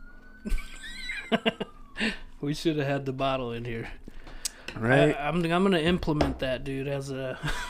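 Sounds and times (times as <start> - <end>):
faint emergency siren wailing outside: 0.0 - 3.1
low hum: 0.0 - 7.6
speech: 0.4 - 0.6, 1.3 - 4.0, 4.7 - 7.6.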